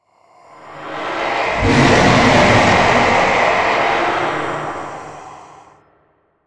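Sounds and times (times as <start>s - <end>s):
boss ghost roar: 0.8s - 5.9s.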